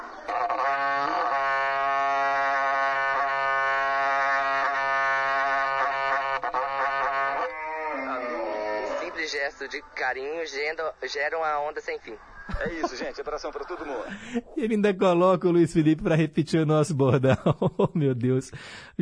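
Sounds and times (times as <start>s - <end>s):
berrante cattle horn blown by a 16-year-old player: 0.0s - 9.3s
speech: 9.3s - 19.0s
laughter: 12.2s - 14.5s, 16.9s - 18.2s.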